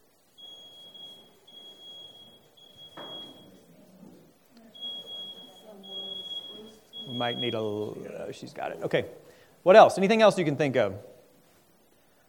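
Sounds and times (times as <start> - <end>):
smoke alarm beeping with a high piercing tone: 0.0 - 3.9, 4.6 - 8.3
murmuring voices: 2.4 - 8.9
speech: 7.2 - 11.1.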